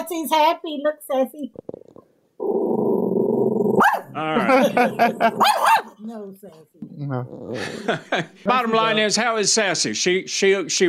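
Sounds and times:
speech: 0:00.1 - 0:01.8, 0:04.2 - 0:10.8
dog growling: 0:01.5 - 0:06.0, 0:07.0 - 0:08.1
dog barking: 0:03.8 - 0:04.2, 0:05.4 - 0:06.0
laughter: 0:04.2 - 0:05.5, 0:07.5 - 0:09.2.

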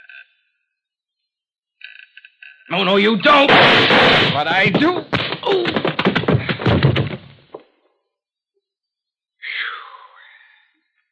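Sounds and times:
speech: 0:02.7 - 0:05.9
burst of gunfire: 0:03.4 - 0:07.5.

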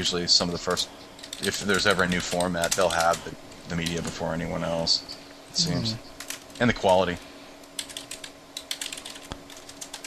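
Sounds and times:
speech: 0:00.0 - 0:07.3
faint hum: 0:00.0 - 0:10.0
typing on a computer keyboard: 0:01.2 - 0:04.0, 0:06.2 - 0:07.0, 0:07.6 - 0:10.0.

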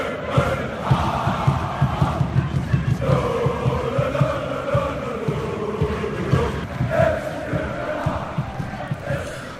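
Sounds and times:
football fans chanting in unison in stadium stands: 0:00.0 - 0:09.5
steady rhythmic thumps like drumbeats or claps: 0:00.3 - 0:09.5.

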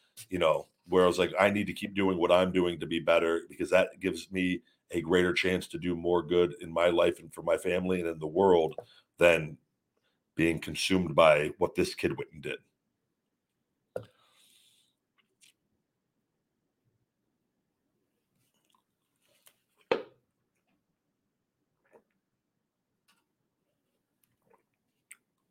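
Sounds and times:
speech: 0:00.3 - 0:09.6, 0:10.4 - 0:12.7
person gulping down the last of a coffee: 0:18.6 - 0:19.0, 0:21.8 - 0:22.2, 0:24.3 - 0:25.4
small wet mouth clicks: 0:24.3 - 0:25.4.

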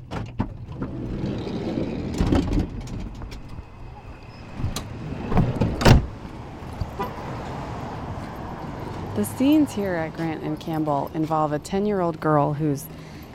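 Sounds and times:
street ambience at the corner of Grant and Campbell: 0:00.8 - 0:13.3
parked car door clunks and thumps: 0:04.5 - 0:07.0
speech: 0:09.2 - 0:13.1.

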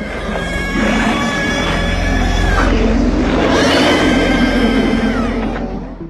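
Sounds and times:
monster shriek from heavily processed bird calls and pig squeals: 0:00.0 - 0:05.8.

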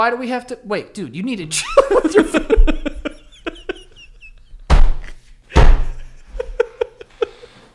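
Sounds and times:
speech: 0:00.0 - 0:02.9
laughter: 0:01.6 - 0:04.6, 0:05.8 - 0:07.6
door being shut: 0:04.7 - 0:06.0.

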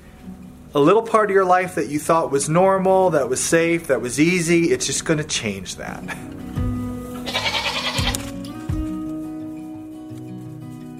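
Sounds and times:
speech: 0:00.7 - 0:06.4
small group of goats bleating: 0:07.1 - 0:08.3.

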